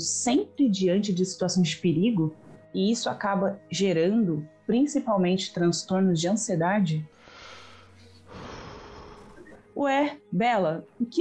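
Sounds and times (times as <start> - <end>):
speech: 0.0 - 7.2, 9.8 - 11.1
slow deep breathing: 7.2 - 9.4.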